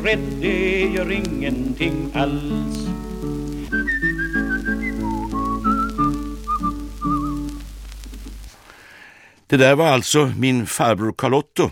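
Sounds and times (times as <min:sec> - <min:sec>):
speech: 0:00.0 - 0:03.5, 0:09.5 - 0:11.7
steady instrumental accompaniment: 0:00.0 - 0:07.7
man whistling a lilting melody: 0:03.6 - 0:07.6.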